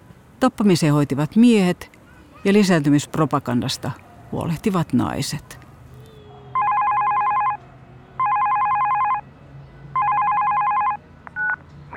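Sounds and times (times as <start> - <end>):
speech: 0.4 - 5.6
telephone ringing: 6.6 - 7.6, 8.2 - 9.2, 10.0 - 11.6.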